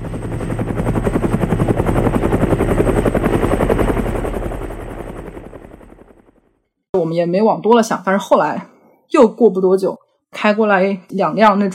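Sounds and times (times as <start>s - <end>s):
military helicopter flying overhead with rotor chop: 0.0s - 6.5s
speech: 7.0s - 11.7s.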